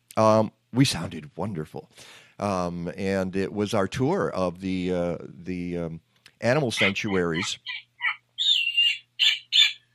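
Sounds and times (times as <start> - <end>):
speech: 0.2 - 7.9
snowy owl screeching calls: 8.0 - 9.9.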